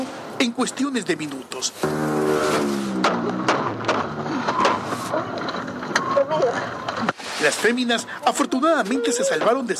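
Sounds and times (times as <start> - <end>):
speech: 0.4 - 3.6, 7.4 - 9.7
car engine revving during a chase: 1.8 - 4.6
sharp knocks and clatters: 3.0 - 7.2.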